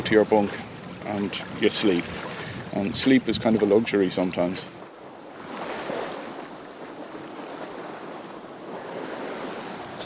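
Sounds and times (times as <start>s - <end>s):
gusty wind against the tide: 0.0s - 10.0s
tidal water rushing and churning past a boat in shallow water: 0.0s - 10.0s
speech: 0.1s - 4.8s.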